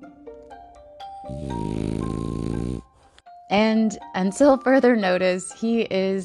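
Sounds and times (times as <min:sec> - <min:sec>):
speech: 0:01.3 - 0:01.8, 0:03.5 - 0:06.2
French bulldog snoring: 0:01.3 - 0:03.0.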